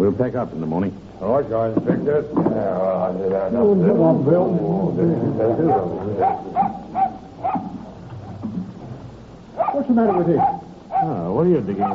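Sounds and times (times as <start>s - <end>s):
speech: 0.0s - 7.6s, 9.6s - 11.9s
people murmuring: 0.7s - 11.9s
dog barking and whimpering: 5.6s - 7.8s, 9.6s - 11.9s.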